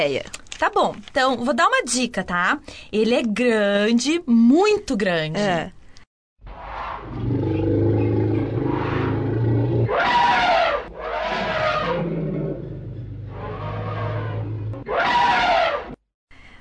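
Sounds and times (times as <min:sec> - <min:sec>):
speech: 0:00.0 - 0:05.8
elephant roaring and trumpeting: 0:06.9 - 0:16.0.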